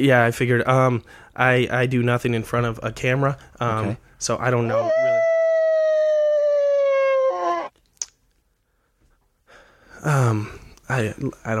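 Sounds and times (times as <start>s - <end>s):
speech: 0.0s - 5.2s, 10.0s - 11.5s
person howling like a wolf: 4.7s - 7.7s.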